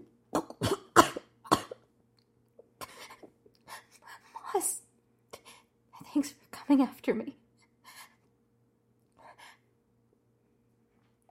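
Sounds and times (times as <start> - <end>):
person performing exaggerated hacking coughs: 0.4 - 1.9
speech: 6.2 - 7.4.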